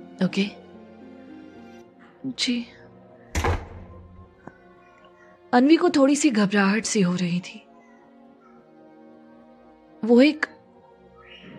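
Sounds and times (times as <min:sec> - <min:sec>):
speech: 0:00.2 - 0:00.6, 0:02.2 - 0:02.8, 0:05.5 - 0:07.6, 0:10.0 - 0:10.6
door swinging shut with a solid thud: 0:03.3 - 0:04.2.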